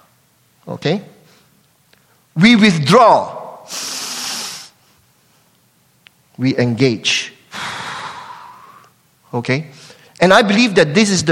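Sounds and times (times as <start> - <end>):
speech: 0.7 - 1.2, 2.4 - 3.9, 6.4 - 7.2, 9.3 - 11.3
group of people exhaling together in unison: 7.5 - 8.9.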